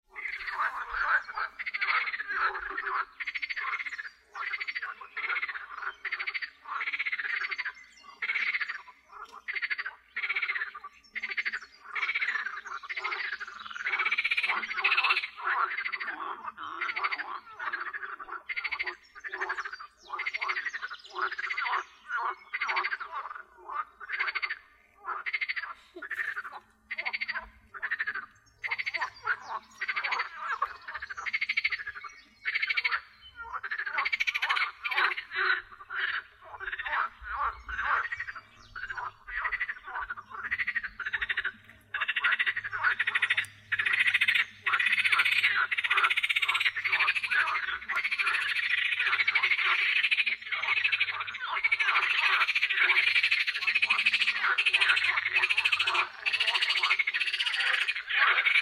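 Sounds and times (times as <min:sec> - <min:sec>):
frogs in a pond: 0:00.0 - 0:58.5.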